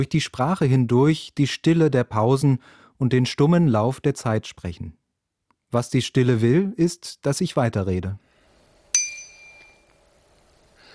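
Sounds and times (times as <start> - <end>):
speech: 0.0 - 5.0, 5.7 - 8.3
soft hiss: 8.2 - 10.9
BBB 120 bicycle bell ring: 9.0 - 10.1.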